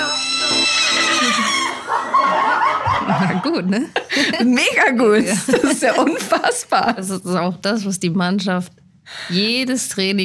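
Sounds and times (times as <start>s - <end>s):
person imitating a horse neigh: 0.0s - 1.9s
laughter: 0.9s - 7.1s
speech: 3.4s - 10.2s.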